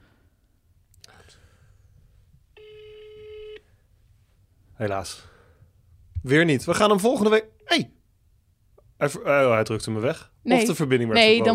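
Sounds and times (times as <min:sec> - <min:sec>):
telephone ringback tone while a call is placed: 0:02.6 - 0:03.6
speech: 0:04.8 - 0:05.3, 0:06.2 - 0:08.0, 0:09.0 - 0:11.5.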